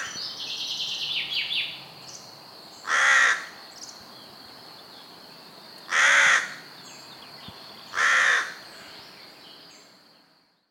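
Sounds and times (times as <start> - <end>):
Carrion crow Corvus corone cawing: 2.8 - 3.6, 5.9 - 6.6, 7.9 - 8.6.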